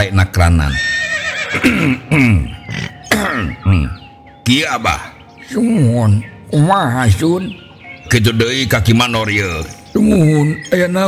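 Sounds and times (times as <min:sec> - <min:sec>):
speech: 0:00.0 - 0:11.0
person clearing throat in the manner of a royal courtier: 0:01.6 - 0:03.8.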